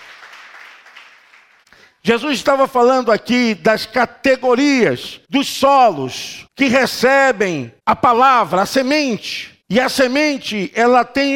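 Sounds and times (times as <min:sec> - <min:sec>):
crowd applauding: 0:00.0 - 0:01.7
speech: 0:02.0 - 0:11.3.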